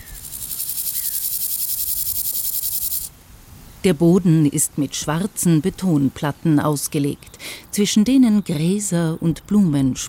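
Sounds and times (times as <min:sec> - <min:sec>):
many grasshoppers of several species chirring in grassland: 0:00.0 - 0:03.1
speech: 0:03.8 - 0:10.0.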